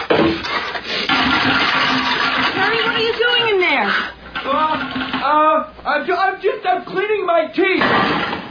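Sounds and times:
toilet flushing: 0:00.2 - 0:05.3
speech: 0:05.9 - 0:08.3.

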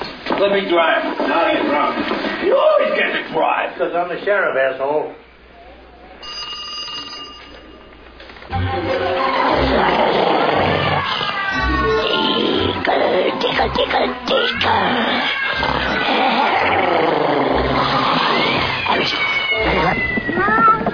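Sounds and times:
speech: 0:00.4 - 0:05.3, 0:08.5 - 0:10.3, 0:12.9 - 0:16.5
cat meowing and yowling: 0:10.4 - 0:12.8, 0:14.6 - 0:20.9.

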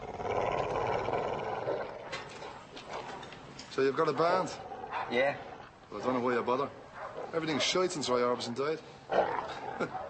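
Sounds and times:
muzzled dog growling: 0:00.0 - 0:03.2, 0:04.3 - 0:05.8, 0:09.1 - 0:10.0
speech: 0:03.8 - 0:10.0.

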